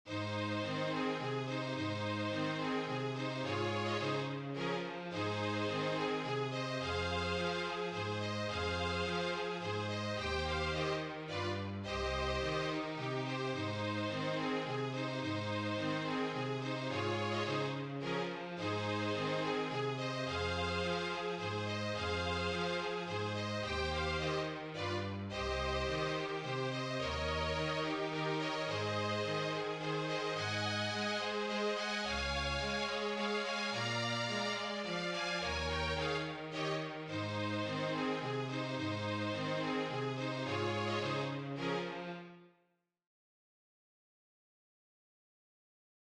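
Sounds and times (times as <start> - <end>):
flute trio playing a waltz in A flat: 0.1 - 42.0.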